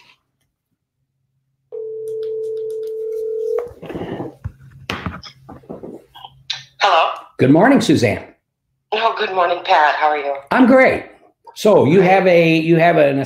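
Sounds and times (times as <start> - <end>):
electronic telephone ringback tone on an outgoing call: 1.7 - 3.8
speech: 6.8 - 8.3, 9.2 - 13.2.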